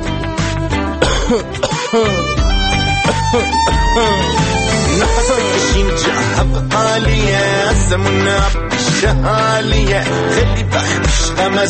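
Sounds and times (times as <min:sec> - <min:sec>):
continuous tonal music: 0:00.0 - 0:11.6
person coughing harshly: 0:01.0 - 0:02.3
speech: 0:01.3 - 0:02.3, 0:03.3 - 0:04.4, 0:05.0 - 0:11.6.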